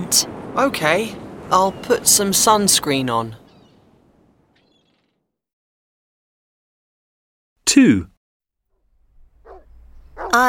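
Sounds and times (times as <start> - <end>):
speech: 0.1 - 3.4, 7.8 - 8.1
dog barking: 9.4 - 10.4.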